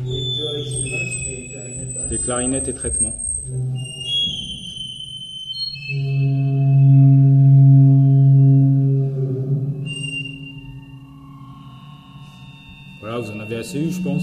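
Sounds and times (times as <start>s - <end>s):
theremin droning with a low wavering tone: 0.0s - 14.2s
thin piercing audio feedback whistles: 0.0s - 14.2s
speech: 2.1s - 3.8s, 5.9s - 7.2s, 13.2s - 14.2s.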